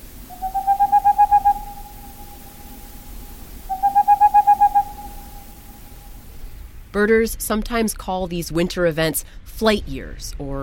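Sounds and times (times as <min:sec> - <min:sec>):
boreal owl hooting: 0:00.0 - 0:06.2
speech: 0:07.0 - 0:10.6.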